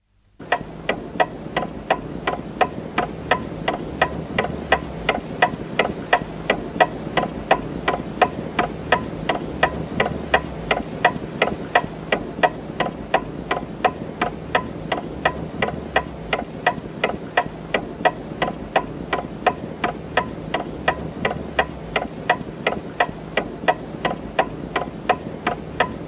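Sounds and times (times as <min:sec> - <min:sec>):
clock ticking: 0:00.4 - 0:26.0.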